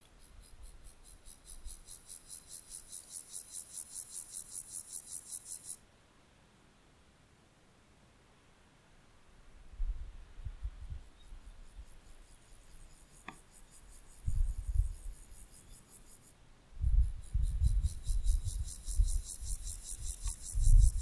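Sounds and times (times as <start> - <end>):
Chorthippus rammei stridulating: 0.0 - 5.8, 11.1 - 21.0.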